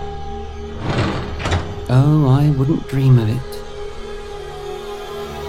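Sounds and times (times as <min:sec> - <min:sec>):
heavy door sealing shut with mechanical rumble and hiss: 0:00.6 - 0:02.2
speech: 0:01.9 - 0:03.5.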